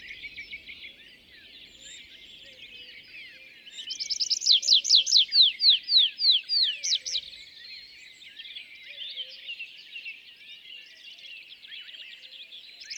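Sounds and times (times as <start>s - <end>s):
tree pipit display song at an isolated tree at a meadow's foot: 0.0s - 2.5s, 3.1s - 7.4s.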